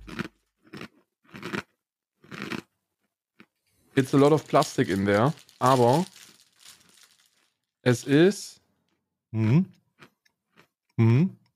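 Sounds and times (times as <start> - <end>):
crunchy chewing of a cookie: 0.0 - 2.7, 3.4 - 7.6
speech: 4.0 - 6.2, 7.9 - 8.6, 9.3 - 9.8, 11.0 - 11.4.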